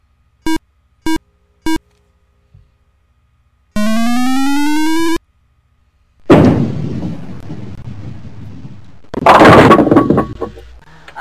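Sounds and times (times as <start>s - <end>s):
short beeps: 0.4s - 1.8s, 3.8s - 5.2s
rising electronic tone: 3.8s - 5.2s
bowling ball rumbling down the lane and crashing into pins: 9.1s - 10.6s.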